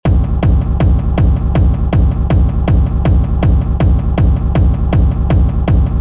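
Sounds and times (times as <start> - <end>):
hard techno kick drum: 0.0 - 5.9.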